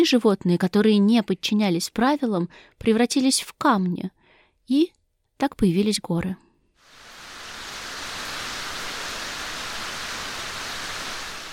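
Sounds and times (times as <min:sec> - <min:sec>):
speech: 0:00.0 - 0:06.4
heavy rain: 0:06.8 - 0:11.5.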